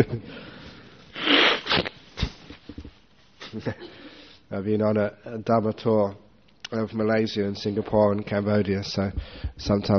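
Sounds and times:
speech: 0:00.0 - 0:00.5, 0:04.6 - 0:09.9
person blowing nose: 0:01.1 - 0:02.4
sniffs: 0:01.1 - 0:02.4.

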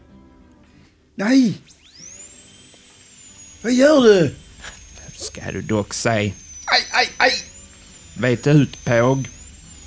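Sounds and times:
speech: 0:01.2 - 0:01.8, 0:03.6 - 0:04.4, 0:05.2 - 0:06.4, 0:07.0 - 0:07.5, 0:08.2 - 0:09.4
electric drill drilling into a tire: 0:01.6 - 0:09.8.

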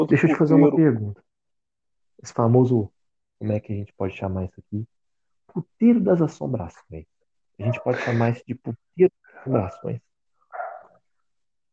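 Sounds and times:
speech: 0:00.0 - 0:01.2, 0:02.2 - 0:10.1
dog bark: 0:07.6 - 0:08.2, 0:09.4 - 0:10.0, 0:10.6 - 0:10.9.

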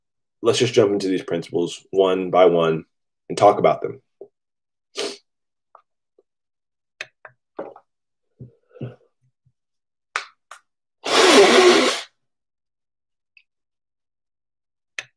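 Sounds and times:
speech: 0:00.4 - 0:04.0
person blowing nose: 0:05.0 - 0:05.2, 0:11.0 - 0:12.2.

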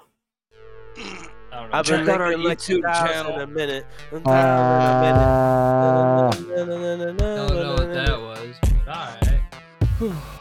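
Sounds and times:
speech: 0:01.6 - 0:08.2, 0:10.0 - 0:10.3
person's voice imitating a foghorn with a low blast: 0:04.3 - 0:06.4.

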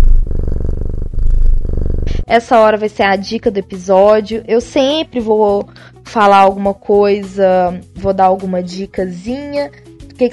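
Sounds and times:
cat purring: 0:00.0 - 0:02.3
speech: 0:02.3 - 0:10.3.

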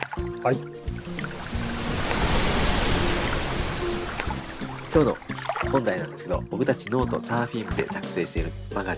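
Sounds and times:
speech: 0:00.4 - 0:00.8, 0:04.9 - 0:08.9
ocean surf waves rolling in: 0:00.8 - 0:05.7.

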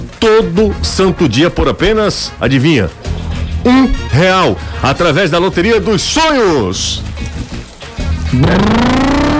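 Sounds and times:
speech: 0:00.2 - 0:03.0, 0:03.6 - 0:07.1, 0:08.3 - 0:09.2
motorcycle engine revving: 0:08.2 - 0:09.3.

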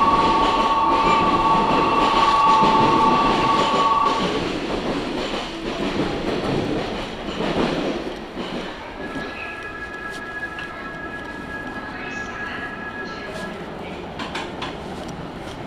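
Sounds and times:
local electric train tonal whine departing a station: 0:00.0 - 0:04.7, 0:08.8 - 0:15.1
local electric train rumbling and rattling departing a station: 0:00.0 - 0:15.6.

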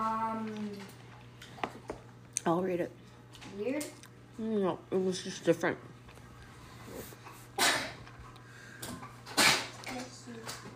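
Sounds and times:
faint steady hum: 0:00.0 - 0:10.7
speech: 0:02.4 - 0:03.0, 0:03.6 - 0:05.9
person sneezing: 0:07.6 - 0:08.0, 0:09.4 - 0:09.8.

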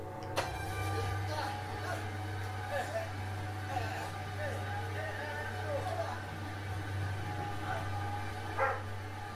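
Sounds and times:
noise: 0:00.0 - 0:09.3
steady low hum: 0:00.0 - 0:09.3
laughter: 0:01.0 - 0:08.6
puppy barking and yipping: 0:08.6 - 0:08.8.

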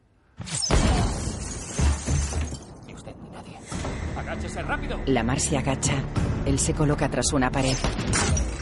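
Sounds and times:
window glass shattering under rifle fire: 0:00.4 - 0:02.7
speech: 0:04.3 - 0:08.4.

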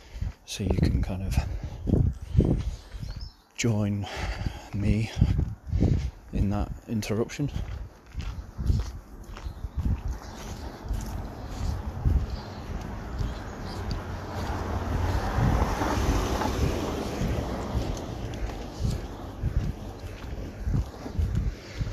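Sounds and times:
crunchy footsteps: 0:00.0 - 0:21.9
steady wind buffeting: 0:00.0 - 0:21.9
speech: 0:00.5 - 0:02.6, 0:03.6 - 0:07.8
car driving slowly past outdoors: 0:10.3 - 0:21.2.

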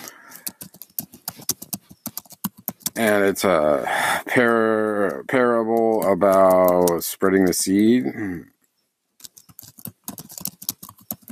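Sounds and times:
rapid typing on a computer keyboard: 0:00.0 - 0:03.3, 0:05.0 - 0:07.0, 0:09.2 - 0:11.3
speech: 0:03.0 - 0:08.6.

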